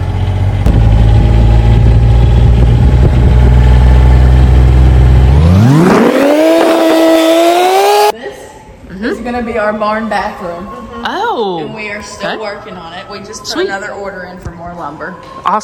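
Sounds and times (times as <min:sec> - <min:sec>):
Gator utility vehicle engine running during a ride: 0:00.0 - 0:08.2
speech: 0:09.4 - 0:15.6.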